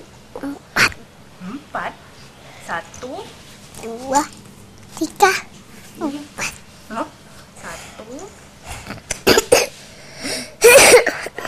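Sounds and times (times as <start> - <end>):
speech: 0.4 - 0.7, 1.4 - 2.1, 2.7 - 4.4, 5.0 - 7.2
short coughs: 9.1 - 9.7, 10.3 - 11.4.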